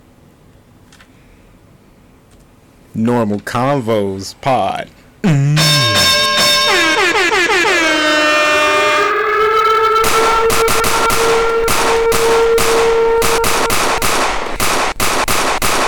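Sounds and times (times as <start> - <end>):
speech: 3.0 - 5.4
rising horn-like tonal sweep: 5.6 - 14.6
steady droning tone: 5.6 - 14.6
rapid string of sharp gunshot bangs sound effect: 13.7 - 15.8.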